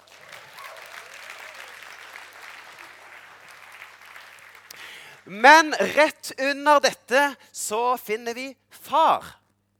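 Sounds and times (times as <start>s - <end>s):
steady audience applause with many hands clapping: 0.0s - 5.3s
speech: 5.2s - 9.4s.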